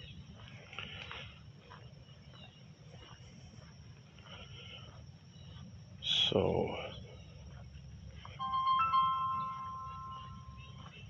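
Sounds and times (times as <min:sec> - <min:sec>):
low hum: 0:00.0 - 0:11.0
speech: 0:06.3 - 0:06.9
electronic phone ringtone for an incoming call: 0:08.4 - 0:10.7.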